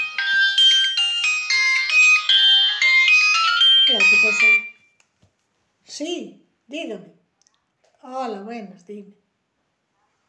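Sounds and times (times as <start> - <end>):
mobile phone ringtone for an incoming call: 0.0 - 5.0
speech: 3.9 - 4.7, 5.9 - 7.2, 8.0 - 9.2.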